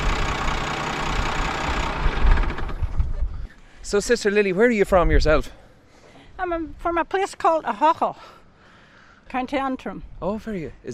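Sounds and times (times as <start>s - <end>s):
tractor engine idling with low rumbling chug: 0.0s - 3.2s
speech: 3.9s - 5.6s, 6.4s - 8.4s, 9.3s - 10.9s.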